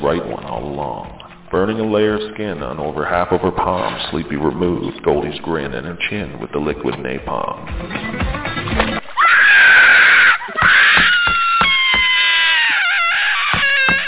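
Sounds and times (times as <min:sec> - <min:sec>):
speech: 0:00.0 - 0:08.9
woman screaming in pain: 0:09.2 - 0:14.0.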